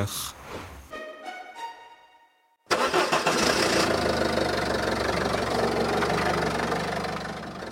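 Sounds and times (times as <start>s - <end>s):
speech: 0.0s - 0.4s
old car engine cranking, starting and idling: 2.7s - 7.7s.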